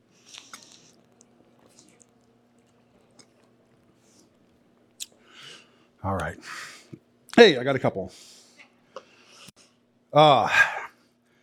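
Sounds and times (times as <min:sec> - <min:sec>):
person drinking water in sips and swallows: 0:00.0 - 0:05.5
low steady hum: 0:00.0 - 0:11.4
soft wet mouth clicks: 0:00.2 - 0:03.9, 0:05.0 - 0:05.2
speech: 0:06.0 - 0:06.6, 0:07.4 - 0:08.3, 0:10.1 - 0:10.7.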